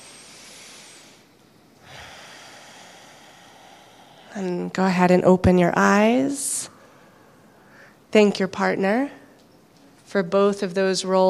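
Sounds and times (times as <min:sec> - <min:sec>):
deep breath in during a guided partner exercise: 0:00.0 - 0:04.4, 0:06.7 - 0:08.0
speech: 0:04.4 - 0:06.6, 0:08.1 - 0:09.2, 0:10.1 - 0:11.2.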